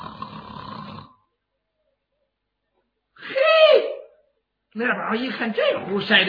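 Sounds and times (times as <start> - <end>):
voice imitating snoring of sleeping men: 0.0 - 1.3
speech: 4.8 - 6.2.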